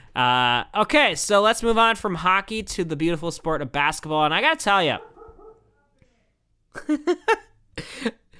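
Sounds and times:
speech: 0.2 - 5.1, 6.8 - 8.2
dog giving a short tonal bark or yelp: 5.0 - 5.9
laughter: 6.8 - 8.1.

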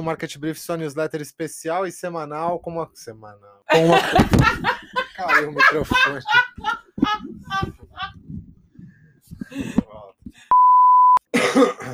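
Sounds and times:
speech: 0.0 - 7.8
laughter: 3.7 - 8.2
steady electronic beep: 10.5 - 11.2
small cough: 11.3 - 11.9.

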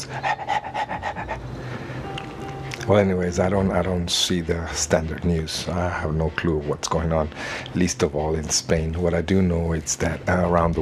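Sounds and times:
speech: 0.0 - 1.0, 2.9 - 10.8
female dog panting from the heat: 0.0 - 1.6.

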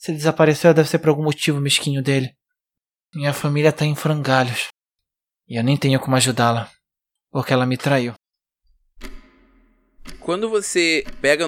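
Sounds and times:
speech: 0.0 - 2.4, 3.1 - 4.7, 5.5 - 8.2, 10.3 - 11.4
clock ticking: 8.7 - 11.4.

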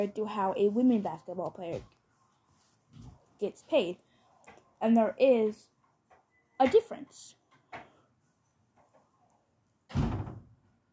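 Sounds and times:
speech: 0.0 - 2.0, 2.9 - 4.1, 4.8 - 5.7, 6.6 - 7.8
front door slamming shut: 9.9 - 10.5.

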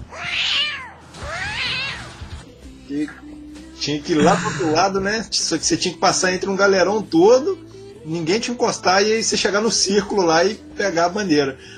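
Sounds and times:
cat meowing: 0.1 - 2.1
speech: 2.9 - 11.7.

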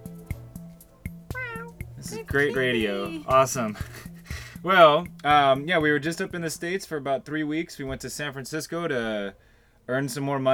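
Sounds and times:
cat on a bed meowing: 0.0 - 3.7
soft thumps and clicks: 0.0 - 6.4
laughter: 2.0 - 4.6
speech: 2.0 - 10.5.

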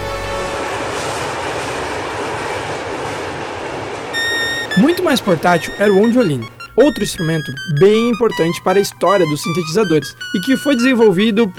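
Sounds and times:
train rolling on rails: 0.0 - 7.7
thin metallic squeal: 4.2 - 6.9
speech: 4.8 - 11.5.

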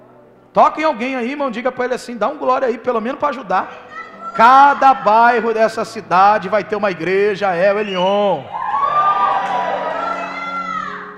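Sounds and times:
speech: 0.6 - 8.6
woman in a church audience shouting enthusiastically: 3.8 - 5.4, 10.0 - 11.1
crowd of voices cheering and calling out in church: 7.8 - 11.1.

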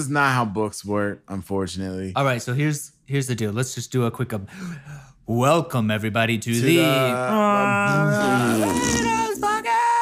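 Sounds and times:
speech: 0.0 - 9.2
long loud buzzy rasping fart: 8.2 - 9.3.

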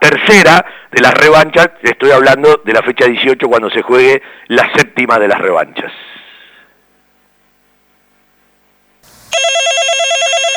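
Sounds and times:
speech: 0.0 - 6.1, 9.3 - 10.5
faint telephone line hum: 7.4 - 10.4
loud electronic telephone ring with warbling trill: 9.0 - 10.5.

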